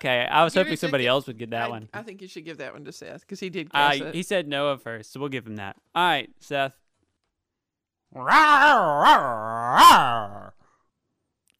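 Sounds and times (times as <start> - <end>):
speech: 0.0 - 6.8, 8.1 - 10.5
person imitating a dog growl: 8.2 - 10.6.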